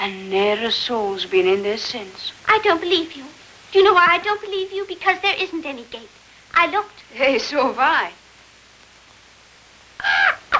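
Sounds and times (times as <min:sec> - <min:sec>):
speech: 0:00.0 - 0:08.2
bird cawing: 0:10.0 - 0:10.5.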